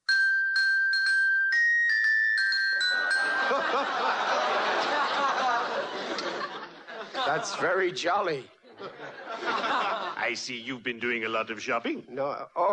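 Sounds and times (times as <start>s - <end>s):
small hand bell ringing: 0.0s - 3.8s
crowd of people chattering and laughing: 3.0s - 7.8s, 8.6s - 10.2s
speech: 7.2s - 12.7s.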